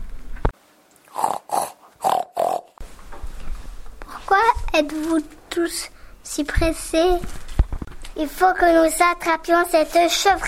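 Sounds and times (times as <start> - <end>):
pig in its pigsty grunting and snorting as it wakes up: 1.1 - 2.8
speech: 4.7 - 7.4, 8.2 - 10.4.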